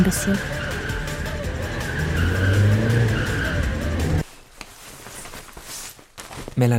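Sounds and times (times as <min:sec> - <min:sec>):
speech: 0:00.0 - 0:00.6, 0:06.6 - 0:06.7
car tire squealing while skidding on ice: 0:00.0 - 0:04.2.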